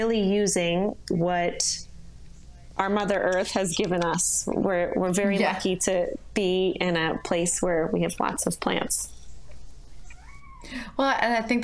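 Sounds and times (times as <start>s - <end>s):
speech: 0.0s - 1.9s, 2.8s - 9.2s, 10.6s - 11.6s
low steady hum: 0.0s - 11.6s
cat meowing: 10.1s - 10.8s.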